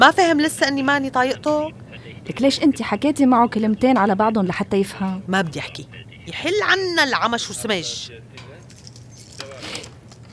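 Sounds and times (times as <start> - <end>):
speech: 0.0 - 8.5
low steady hum: 0.0 - 10.3
keys jingling and scraping in a door lock: 8.7 - 10.3.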